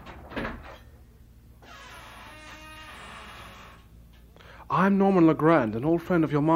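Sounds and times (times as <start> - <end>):
heavy seldom-opened door creaking open: 0.0 - 0.8, 1.6 - 3.9
speech: 4.7 - 6.5.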